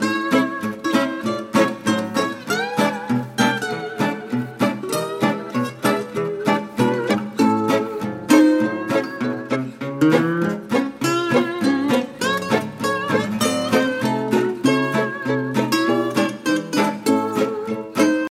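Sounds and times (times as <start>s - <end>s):
ukulele: 0.0s - 18.3s.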